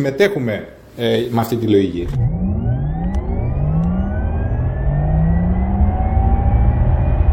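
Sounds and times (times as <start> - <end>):
speech: 0.0 - 2.4
electric car accelerating with amplified synthetic motor whine: 2.0 - 7.3.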